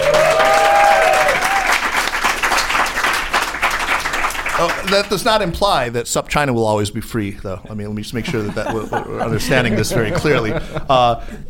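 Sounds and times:
high cheer: 0.0 - 2.7
crowd applauding: 0.0 - 5.5
speech: 4.9 - 11.4
laughter: 8.2 - 11.2.

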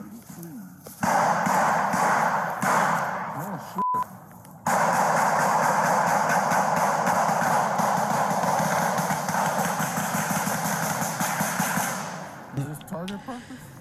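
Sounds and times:
gunshots in a forest: 1.0 - 3.7, 4.6 - 12.5.

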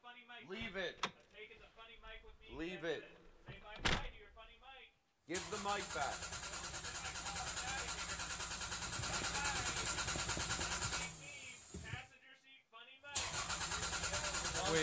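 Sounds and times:
speech: 0.2 - 1.1, 1.8 - 6.7
person imitating a car engine cranking without catching: 5.4 - 11.8, 13.2 - 14.8.

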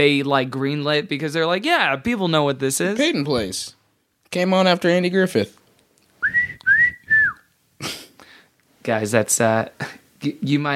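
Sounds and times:
speech: 0.0 - 5.6, 8.8 - 10.7
person whistling a TV theme song: 6.2 - 7.4.

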